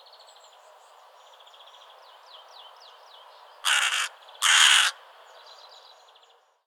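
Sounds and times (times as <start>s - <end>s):
carrion crow Corvus corone cawing: 3.6s - 5.0s.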